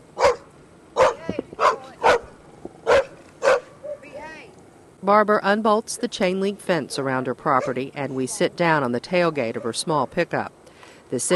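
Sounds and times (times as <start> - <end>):
small scruffy black dog barking an alarm: 0.2 - 4.1
speech: 5.0 - 11.3.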